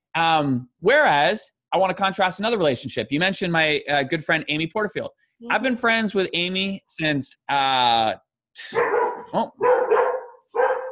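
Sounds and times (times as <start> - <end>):
speech: 0.2 - 10.0
dog barking excitedly: 8.8 - 10.9.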